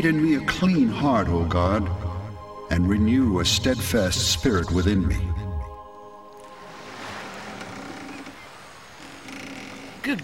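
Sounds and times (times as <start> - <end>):
speech: 0.0 - 2.0, 2.7 - 5.4, 10.0 - 10.2
boat moving on open water: 6.0 - 10.2
waves rushing and splashing: 6.4 - 10.2.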